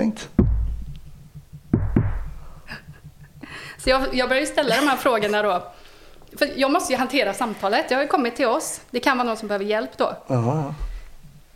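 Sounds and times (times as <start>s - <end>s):
speech: 0.0s - 0.4s, 3.8s - 10.9s
low steady hum: 0.0s - 11.5s
sharp knocks: 0.4s - 4.9s.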